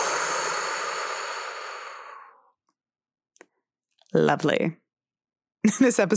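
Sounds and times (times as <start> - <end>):
long breathy exhale: 0.0 - 2.5
speech: 4.1 - 4.8, 5.6 - 6.1.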